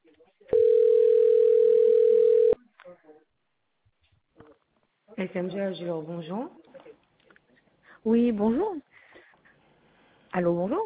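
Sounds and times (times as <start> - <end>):
telephone ring tone while waiting for a busy line: 0.6 - 2.6
speech: 5.2 - 6.6, 8.0 - 8.9, 10.4 - 10.8.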